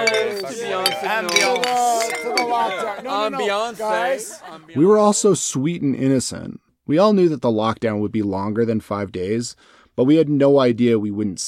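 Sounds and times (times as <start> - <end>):
beer glasses clinking in a toast: 0.0 - 3.5
small group chatting and laughing: 0.0 - 5.1
speech: 0.5 - 11.4.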